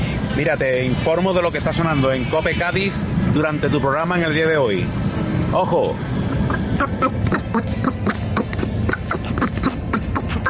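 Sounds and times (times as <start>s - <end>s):
speech: 0.4s - 8.1s
garbled nasal quacking voice on a radio broadcast in Cádiz Spain: 6.3s - 10.4s.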